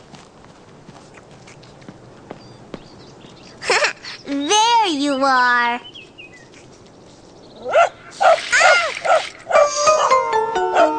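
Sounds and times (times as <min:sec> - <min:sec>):
speech: 0:05.0 - 0:06.0
dog barking with yips and whines: 0:07.6 - 0:10.2, 0:10.8 - 0:10.9.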